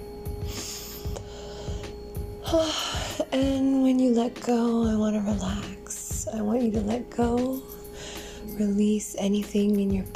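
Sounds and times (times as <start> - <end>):
deep breath in during a guided relaxation exercise: 0.4 - 2.0, 7.8 - 8.5
speech: 2.5 - 7.7, 8.6 - 10.1.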